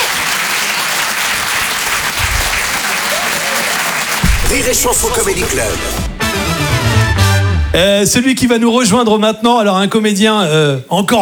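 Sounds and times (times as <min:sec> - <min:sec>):
comedy club audience in Paris applauding loudly: 0:00.0 - 0:07.4
speech: 0:04.5 - 0:06.2, 0:07.7 - 0:11.2.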